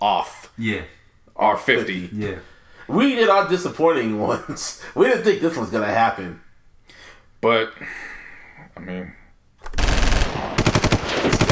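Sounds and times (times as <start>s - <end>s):
speech: 0.0s - 6.4s, 7.4s - 8.1s, 8.8s - 9.2s
rapid automatic gunfire: 9.7s - 11.4s.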